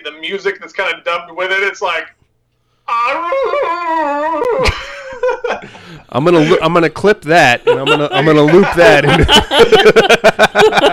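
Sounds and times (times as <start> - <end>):
speech: 0.0 - 2.2, 2.9 - 10.9
laughter: 2.9 - 6.7, 7.3 - 10.9
person imitating a wolf howl: 3.0 - 4.6.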